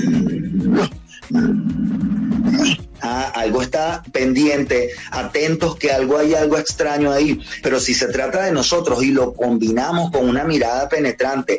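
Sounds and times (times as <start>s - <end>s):
dog growling while lying down: 0.0s - 2.9s
speech: 3.5s - 11.5s.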